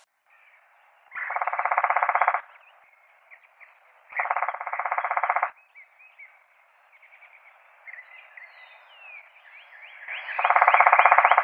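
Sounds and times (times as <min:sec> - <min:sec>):
Red-bellied woodpecker churring in a fast even rattle: 0:01.2 - 0:02.7, 0:04.1 - 0:05.6, 0:10.4 - 0:11.4.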